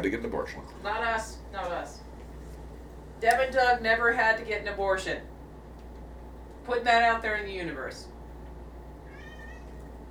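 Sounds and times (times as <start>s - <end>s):
speech: 0.0s - 2.1s, 3.2s - 5.3s, 6.6s - 8.1s
male cat meowing: 9.0s - 9.9s.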